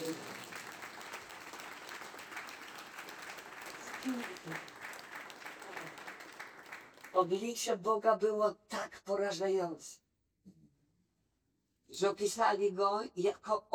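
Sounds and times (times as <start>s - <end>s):
congregation applauding during a church sermon: 0.0s - 7.3s
speech: 4.0s - 4.7s, 7.2s - 10.0s, 11.9s - 13.7s.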